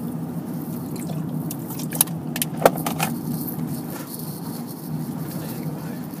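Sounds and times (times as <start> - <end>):
car cabin road rumble while driving at about 60 km/h: 0.0 - 6.1
metallic jingles and clicks in a car cabin: 1.9 - 6.1.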